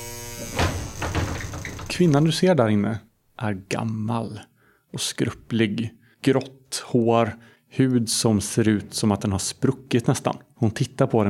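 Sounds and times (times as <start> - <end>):
door lock being unlocked with short mechanical clicks: 0.4 - 2.2
speech: 2.0 - 11.2.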